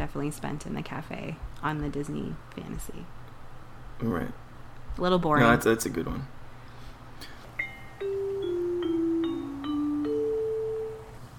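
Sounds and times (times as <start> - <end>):
speech: 0.1 - 3.2, 4.0 - 4.4, 5.0 - 6.4
bell chime melody: 7.6 - 11.1.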